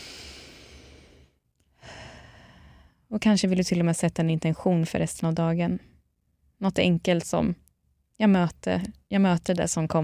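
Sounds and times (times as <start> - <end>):
slow breathing in through the nose and out through the mouth: 0.0 - 3.1
speech: 3.1 - 5.9, 6.6 - 7.6, 8.2 - 10.0.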